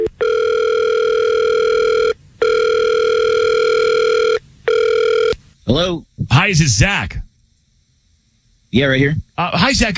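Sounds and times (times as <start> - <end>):
outgoing phone call electronic ringback tones: 0.0 - 5.3
speech: 5.7 - 7.2, 8.7 - 9.9.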